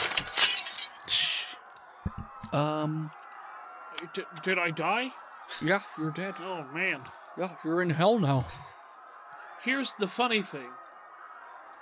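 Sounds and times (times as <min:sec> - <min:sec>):
tinkling glass shards: 0:00.0 - 0:01.1
back window of a RAV4 shattering from a car bumping into another car: 0:00.0 - 0:01.2
speech: 0:02.5 - 0:03.2, 0:04.0 - 0:08.7, 0:09.6 - 0:10.8.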